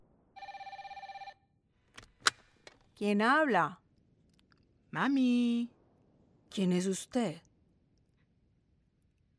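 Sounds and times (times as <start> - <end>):
telephone ringing with trilling electronic tone: 0.4 - 1.4
speech: 3.0 - 3.8, 4.9 - 5.8, 6.5 - 7.5.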